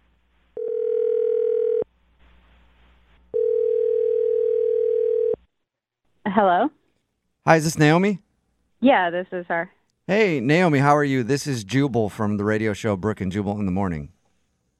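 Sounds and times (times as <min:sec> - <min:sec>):
phone ringback tones: 0:00.6 - 0:01.9, 0:03.3 - 0:05.4
speech: 0:06.3 - 0:06.8, 0:07.5 - 0:08.3, 0:08.8 - 0:14.1.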